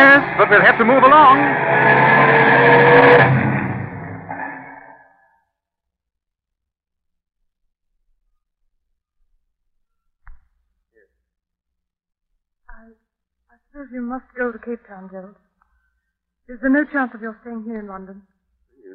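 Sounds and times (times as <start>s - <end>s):
car roaring past at speed: 0.0s - 5.0s
speech: 0.2s - 3.5s, 13.8s - 15.4s, 16.5s - 18.3s.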